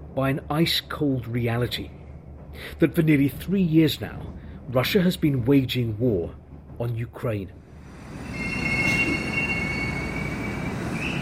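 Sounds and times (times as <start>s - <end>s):
metro train steady low rumble: 0.0s - 11.2s
speech: 0.2s - 2.0s, 2.6s - 7.6s
metro train wheels squealing while braking into a station: 7.7s - 11.2s.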